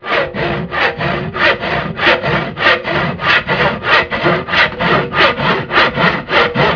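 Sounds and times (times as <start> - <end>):
sawing: 0.0 - 6.7.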